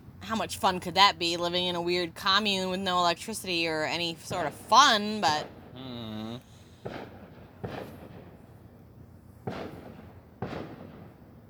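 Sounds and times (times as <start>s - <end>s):
speech: 0.3s - 5.6s
fireworks booming outside with rumbling tails: 4.0s - 8.5s, 9.4s - 11.4s.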